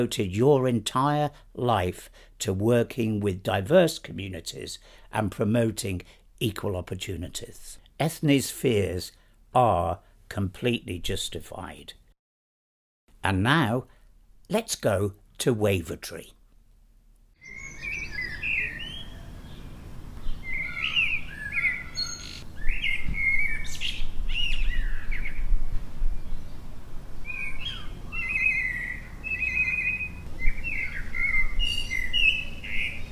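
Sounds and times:
speech: 0.0 - 12.0, 13.2 - 16.4
soft low outdoor rumble: 16.3 - 33.1
birds chirping and warbling in a garden in Wavertree: 17.4 - 25.6, 26.2 - 33.1.

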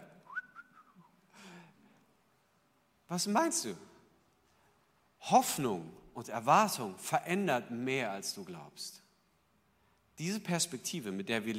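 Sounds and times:
person whistling a lilting phrase: 0.2 - 1.2
speech: 3.1 - 3.9, 5.3 - 9.0, 10.2 - 11.5.

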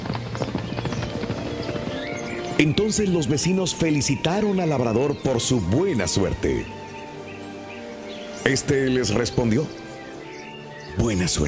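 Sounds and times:
herd of horses galloping with hooves clip-clopping: 0.0 - 9.8
speech: 2.6 - 6.8, 8.5 - 9.8, 11.0 - 11.4.

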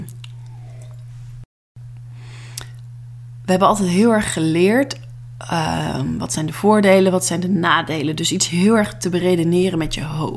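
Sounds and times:
steady low electrical hum: 0.0 - 10.3
person sipping and swallowing a drink: 0.1 - 1.2, 2.3 - 2.9
speech: 3.5 - 10.3.

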